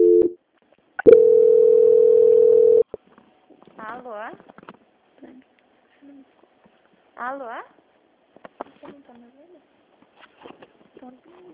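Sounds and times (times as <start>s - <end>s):
telephone tone during a call transfer: 0.0s - 0.4s, 1.0s - 2.8s
speech: 7.2s - 7.8s, 11.0s - 11.5s.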